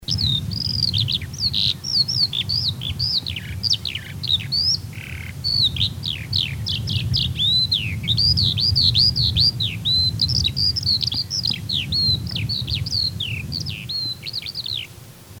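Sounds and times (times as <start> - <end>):
skylark: 0.0 - 15.3.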